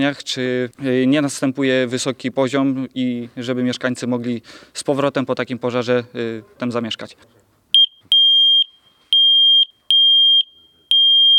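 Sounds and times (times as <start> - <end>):
speech: 0.0 - 7.4
multi-gas detector alarm beeping: 7.8 - 11.3.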